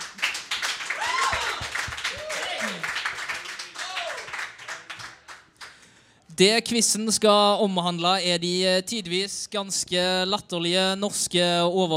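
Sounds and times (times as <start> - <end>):
crowd applause for quiz contestants: 0.0 - 5.8
people whooping: 0.9 - 3.0
speech: 6.4 - 11.9.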